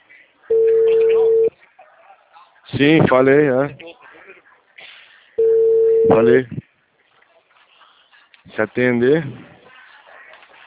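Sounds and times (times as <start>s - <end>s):
telephone beep on a call to an automated phone line: 0.5s - 1.5s, 5.4s - 6.3s
speech: 2.8s - 3.8s, 6.0s - 6.6s, 8.6s - 9.5s.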